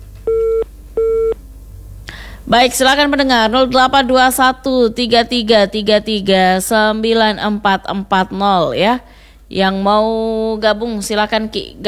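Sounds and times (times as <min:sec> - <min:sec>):
faint telephone line hiss: 0:00.0 - 0:03.2
telephone busy tone after a disconnected call: 0:00.2 - 0:01.4
speech: 0:02.5 - 0:11.8.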